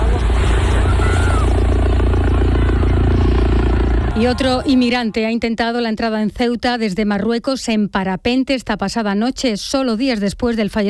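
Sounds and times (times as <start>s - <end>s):
police helicopter flying overhead: 0.0s - 5.8s
speech: 4.2s - 10.8s.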